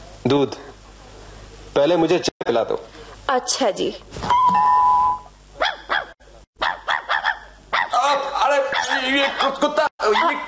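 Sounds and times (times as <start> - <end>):
speech: 0.2 - 0.7, 1.8 - 4.7, 9.2 - 10.4
dog barking in short sharp yaps: 5.6 - 8.0, 8.7 - 10.4.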